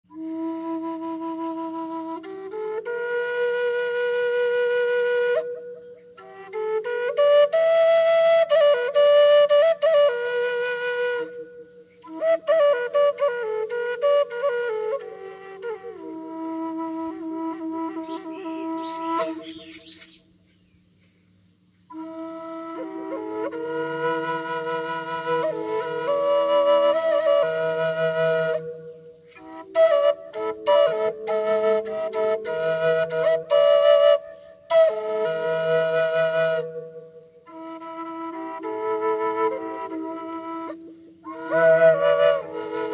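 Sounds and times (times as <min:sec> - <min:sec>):
ancestral triple flute in E playing: 0:00.0 - 0:42.9.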